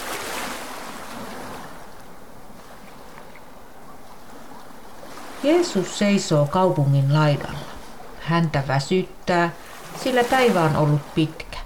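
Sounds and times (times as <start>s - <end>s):
waves on the shore of the Sea of Galilee: 0.0s - 11.6s
wind: 0.0s - 11.6s
speech: 5.4s - 7.6s, 8.2s - 11.5s.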